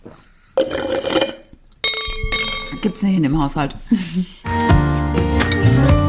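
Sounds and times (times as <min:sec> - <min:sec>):
glass clinking while getting water: 0:00.6 - 0:03.1, 0:05.4 - 0:05.9
glassware clattering: 0:00.6 - 0:03.1
speech: 0:02.8 - 0:04.8.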